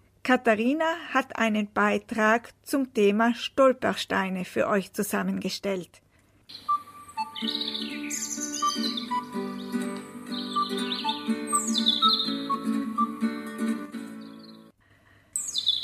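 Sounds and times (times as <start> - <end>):
speech: 0.3 - 6.7, 7.4 - 7.9
several birds singing and twittering: 6.5 - 13.1, 14.2 - 14.7, 15.4 - 15.8.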